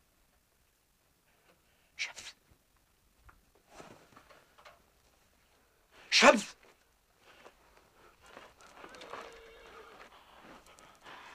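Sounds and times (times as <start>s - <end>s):
rustling: 2.5s - 5.9s, 6.6s - 11.3s
speech: 6.2s - 6.6s
faint horse hoof clops: 7.3s - 11.3s
horse whinnying: 8.6s - 10.1s.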